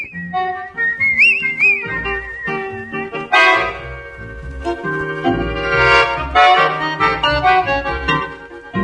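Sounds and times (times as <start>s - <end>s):
whistled melody with trilled notes in a Brazilian popular song: 0.0s - 6.3s
band of strummed and percussive instruments playing a lively popular song: 0.0s - 8.8s.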